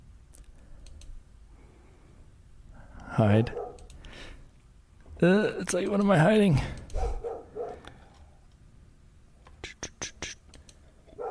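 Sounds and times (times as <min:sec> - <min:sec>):
speech: 0:03.2 - 0:03.6, 0:05.2 - 0:06.8
dog barking: 0:03.5 - 0:03.9, 0:06.9 - 0:07.9.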